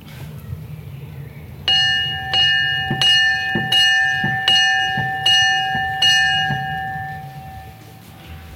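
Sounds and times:
church bell ringing, pulled by rope: 1.7 - 8.5.

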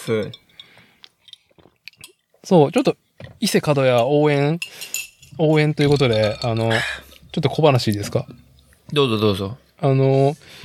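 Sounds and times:
speech: 0.0 - 0.4, 2.4 - 10.6
glasses clinking in a toast: 0.1 - 2.2, 4.6 - 8.3.

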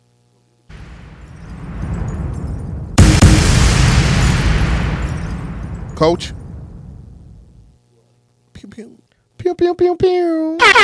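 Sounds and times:
rising rumbling roar of bomb explosion sound effect: 0.7 - 7.5
loud sustained crackling bomb blast: 0.7 - 7.7
sharp heavy bomb explosion boom: 0.7 - 7.7
speech: 6.0 - 6.4, 8.8 - 10.8.

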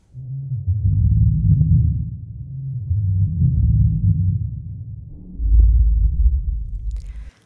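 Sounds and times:
reconstructed T-rex call as deep vibrating rumble: 0.0 - 7.3.

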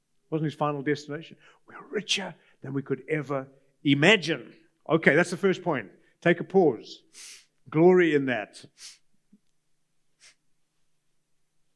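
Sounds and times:
speech: 0.3 - 9.0
man blowing nose: 7.1 - 7.6, 8.7 - 9.1, 10.1 - 10.5.

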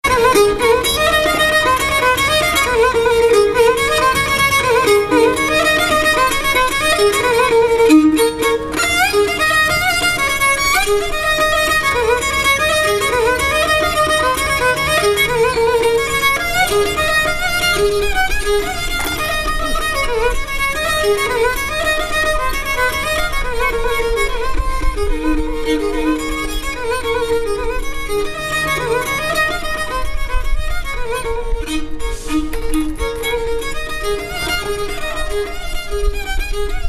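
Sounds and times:
street busker playing a bowed gadulka melody with droning undertone in Sofia: 0.0 - 36.8.

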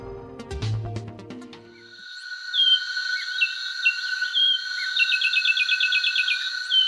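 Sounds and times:
steady buzzing insect chorus: 1.8 - 6.8
finch with grey head and black crown stripes singing chirps and trill: 3.4 - 6.8.

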